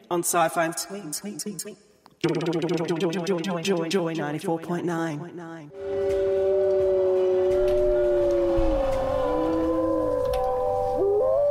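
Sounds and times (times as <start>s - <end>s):
speech: 0.1s - 6.3s
wolves howling: 5.8s - 11.5s.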